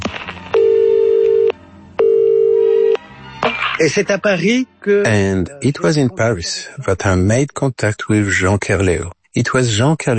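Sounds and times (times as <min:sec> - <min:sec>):
telephone ringing through the line: 0:00.6 - 0:03.0
speech: 0:03.8 - 0:10.1.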